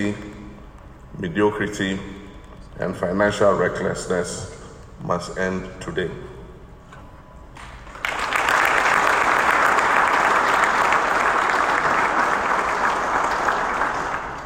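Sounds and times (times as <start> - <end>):
speech: 0.0 - 0.3, 1.1 - 2.2, 2.8 - 6.4
large audience applauding a speech: 7.9 - 14.4.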